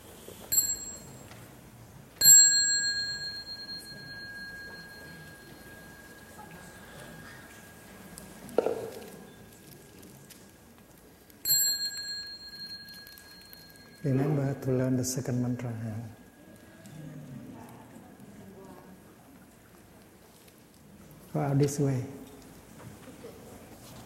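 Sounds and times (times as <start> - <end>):
small meditation bell ringing at a practice session with monks and nuns: 0.5 - 1.5, 2.2 - 9.6, 11.4 - 16.3
speech: 14.0 - 16.2, 21.4 - 22.2.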